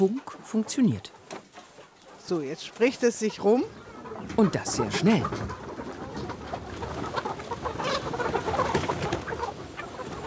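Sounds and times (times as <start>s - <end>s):
speech: 0.0s - 1.2s, 2.3s - 5.6s
chickens clucking on a meadow: 0.0s - 10.2s.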